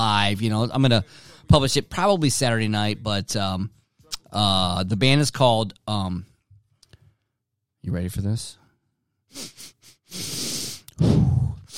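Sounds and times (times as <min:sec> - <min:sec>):
speech: 0:00.0 - 0:06.3, 0:07.8 - 0:08.6, 0:09.3 - 0:11.2
person sniffing: 0:09.3 - 0:11.7
heavy breath exhale: 0:09.4 - 0:11.7.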